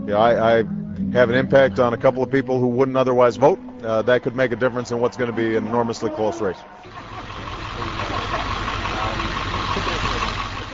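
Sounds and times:
outdoor noise at a park: 0.0 - 10.7
speech: 0.1 - 7.1
school bus engine idling at a park: 0.3 - 10.7
laughter: 4.1 - 10.7.

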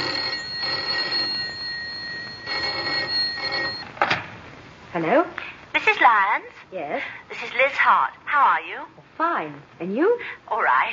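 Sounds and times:
telephone ringing with a bright buzzing bell tone: 0.0 - 4.0
speech: 5.0 - 10.9.

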